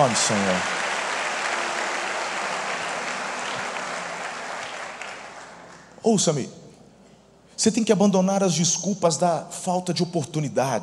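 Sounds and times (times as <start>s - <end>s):
speech: 0.0s - 0.8s, 6.0s - 6.6s, 7.6s - 10.8s
large crowd applauding: 0.0s - 6.0s.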